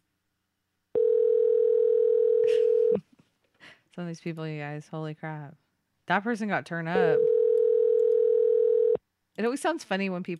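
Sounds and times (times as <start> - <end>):
telephone dial tone after the caller hangs up: 1.0 - 3.0, 7.2 - 9.0
speech: 4.0 - 7.3, 9.4 - 10.3.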